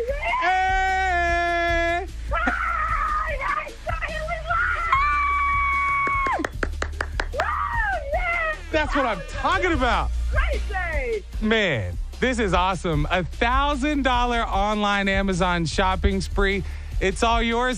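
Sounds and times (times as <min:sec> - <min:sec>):
person screaming in excitement: 0:00.2 - 0:03.7, 0:04.4 - 0:06.5, 0:07.3 - 0:09.4
speech: 0:08.9 - 0:17.7.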